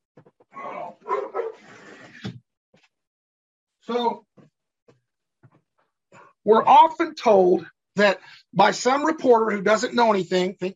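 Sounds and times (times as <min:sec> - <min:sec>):
dog barking and yelping outside a window: 0:00.8 - 0:01.7
speech: 0:03.9 - 0:04.2, 0:06.5 - 0:10.7.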